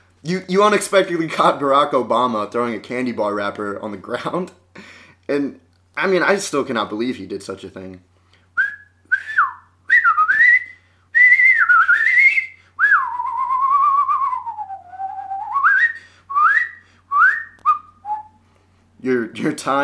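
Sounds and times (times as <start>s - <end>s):
speech: 0.2s - 8.1s, 19.6s - 19.8s
person whistling: 8.6s - 18.4s.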